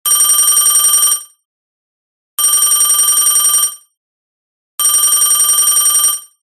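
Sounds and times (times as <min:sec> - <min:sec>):
vintage telephone ringtone: 0:00.1 - 0:01.3, 0:02.4 - 0:03.9, 0:04.8 - 0:06.4.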